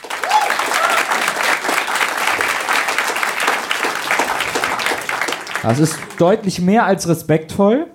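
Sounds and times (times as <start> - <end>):
audience applause: 0.0 - 6.7
faint whoops or calls from audience: 0.1 - 1.4
speech: 5.6 - 7.9.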